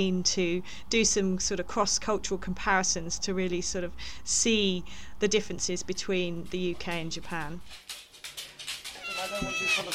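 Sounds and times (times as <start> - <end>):
speech: 0.0 - 8.0, 9.2 - 9.9
cat meowing insistently for food: 9.0 - 9.9.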